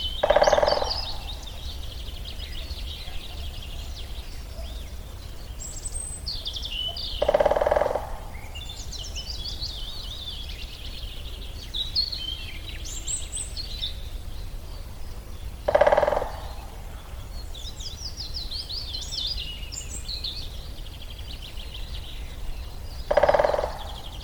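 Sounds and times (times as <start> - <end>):
great spotted woodpecker knocking: 0.2 - 1.6, 7.1 - 8.6, 15.6 - 17.0, 22.8 - 24.2.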